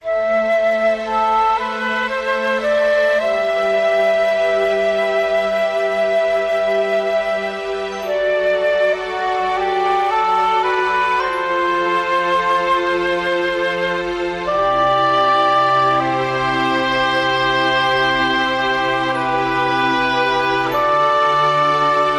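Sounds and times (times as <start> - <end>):
strings: 0.0 - 22.1
woodwinds: 0.0 - 22.1
percussion: 7.8 - 22.1.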